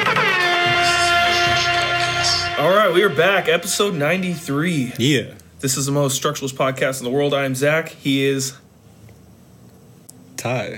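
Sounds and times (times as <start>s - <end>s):
air horn blaring: 0.0s - 4.9s
speech: 2.6s - 8.6s, 10.4s - 10.7s.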